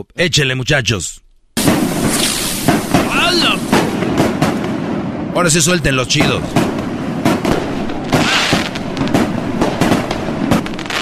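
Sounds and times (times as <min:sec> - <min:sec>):
speech: 0:00.0 - 0:01.2, 0:03.2 - 0:03.7, 0:05.4 - 0:06.8
shrill whistling fireworks rocket shrieking up: 0:01.6 - 0:04.0, 0:08.2 - 0:08.8
fireworks rockets going off in sharp loud bangs: 0:01.6 - 0:11.0.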